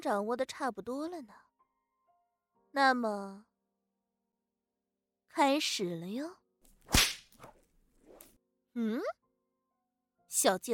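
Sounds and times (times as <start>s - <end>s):
speech: 0.0s - 1.5s, 2.8s - 3.5s, 5.4s - 7.0s, 8.8s - 9.2s, 10.3s - 10.7s
whip lash crack: 6.8s - 7.6s.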